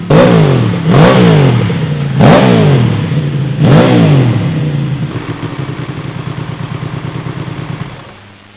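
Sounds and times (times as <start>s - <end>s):
Ducati motorcycle engine revving: 0.0s - 8.2s.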